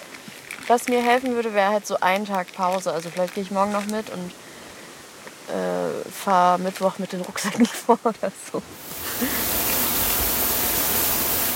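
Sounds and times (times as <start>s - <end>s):
speech: 0.7s - 4.4s, 5.5s - 9.6s
waterfall roaring: 8.7s - 11.5s.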